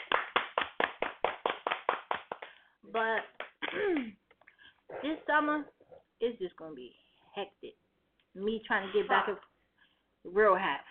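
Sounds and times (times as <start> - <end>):
hand clapping: 0.0 - 4.5
speech: 2.9 - 4.2, 4.9 - 7.8, 8.4 - 9.5, 10.2 - 10.8.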